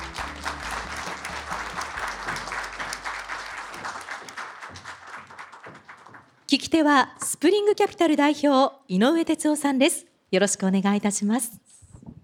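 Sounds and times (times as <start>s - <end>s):
audience applause at an investor relations seminar in Tokyo: 0.0s - 6.3s
speech: 6.5s - 11.6s.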